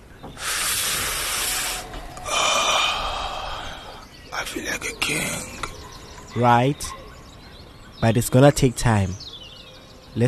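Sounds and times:
person inhaling smoke from burning leaves: 0.4s - 4.0s
speech: 4.4s - 5.6s, 6.3s - 7.0s, 8.0s - 9.2s.

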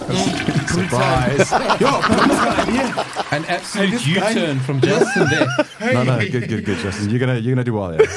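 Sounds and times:
toilet flushing: 0.0s - 5.4s
laughter: 0.1s - 7.3s, 7.9s - 8.1s
speech: 0.1s - 8.1s.

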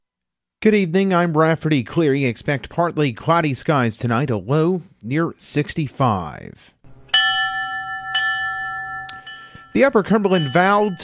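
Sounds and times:
speech: 0.6s - 6.8s, 9.8s - 11.0s
ceremonial bell struck at a memorial for firefighters: 6.9s - 11.0s.

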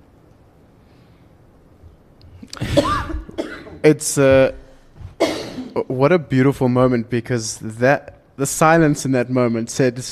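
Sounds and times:
breathing with throat noise: 0.8s - 1.4s, 4.6s - 5.1s
woman coughing: 2.6s - 3.8s, 5.2s - 5.8s
speech: 3.8s - 4.6s, 5.8s - 10.1s.

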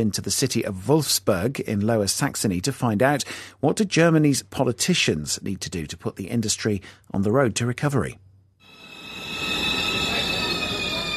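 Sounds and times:
speech: 0.0s - 8.2s
high-pitched squeal of train wheels or brakes: 8.6s - 11.1s
train rolling into a railway station: 8.7s - 11.1s.

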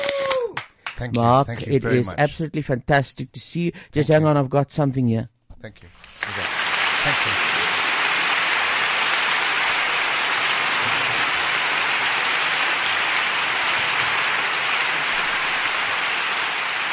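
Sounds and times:
speech: 1.0s - 7.5s
dense applause from a large crowd: 6.0s - 16.9s.

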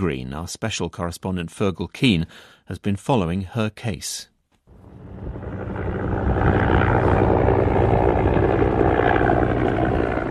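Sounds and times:
speech: 0.0s - 4.3s
helicopter engine and rotor running: 4.7s - 10.2s.

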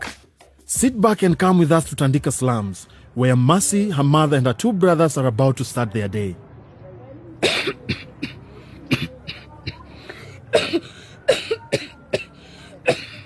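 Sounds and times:
speech: 0.7s - 6.5s
person coughing in harsh rasping bursts: 7.4s - 9.9s, 10.5s - 13.2s.

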